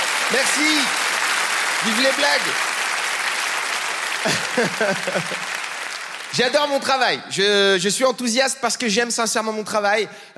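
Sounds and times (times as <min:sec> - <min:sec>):
audience in Montreux applauding: 0:00.0 - 0:07.1
speech: 0:00.3 - 0:01.0, 0:01.8 - 0:02.7, 0:04.2 - 0:05.6, 0:06.3 - 0:10.3
laughter: 0:04.2 - 0:05.6.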